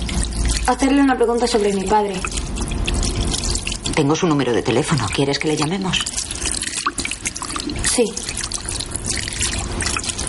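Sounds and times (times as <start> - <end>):
water running from a tap: 0.0 - 10.2
speech: 0.7 - 2.4, 4.0 - 6.2, 8.0 - 8.4.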